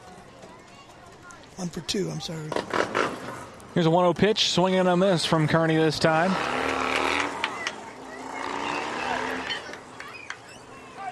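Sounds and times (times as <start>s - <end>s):
speech: 1.6s - 3.0s, 3.8s - 6.6s
motorcycle engine roaring past: 5.7s - 10.2s.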